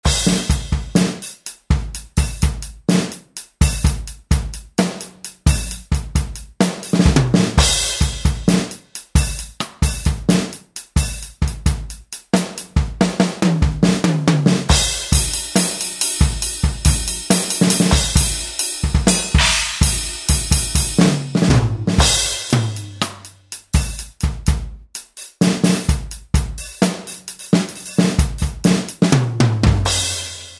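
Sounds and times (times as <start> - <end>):
GM drum kit: 0.0 - 30.5.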